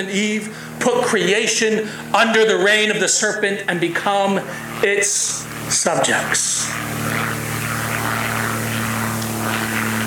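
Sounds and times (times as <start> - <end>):
speech: 0.0 - 7.4
low-flying propeller airplane droning overhead: 0.0 - 10.0.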